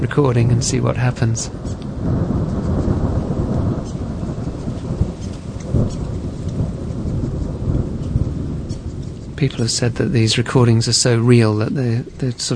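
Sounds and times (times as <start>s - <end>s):
speech: 0.0s - 2.5s, 9.4s - 12.5s
deep thunder rumbling and rolling at a reserve in King Country, New Zealand: 0.0s - 12.5s
heavy dense rain hissing in a thunderstorm at a reserve in King Country, New Zealand: 0.0s - 12.5s.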